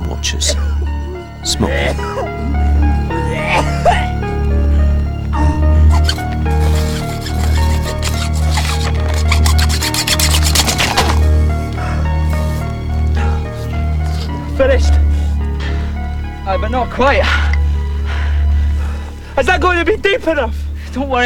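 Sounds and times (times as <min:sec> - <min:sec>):
sustained tonal background: 0:00.0 - 0:21.2
speech: 0:00.2 - 0:04.0, 0:16.6 - 0:17.5, 0:19.4 - 0:21.2
saw rasping through a body in the woods: 0:05.9 - 0:14.6.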